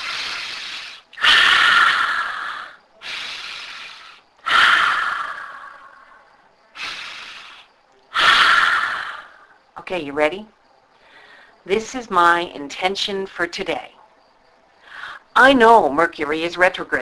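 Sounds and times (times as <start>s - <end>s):
slow deep breaths drawn in and let out: 0.0s - 9.7s, 10.9s - 11.6s, 14.7s - 15.3s
speech: 9.9s - 10.6s, 11.6s - 14.0s, 15.4s - 16.9s.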